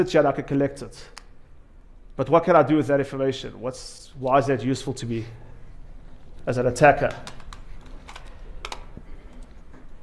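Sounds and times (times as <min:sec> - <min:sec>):
speech: 0:00.0 - 0:01.2, 0:02.2 - 0:05.5, 0:06.4 - 0:07.4
low steady room hum: 0:00.0 - 0:10.0
computer keyboard typing: 0:07.0 - 0:09.6.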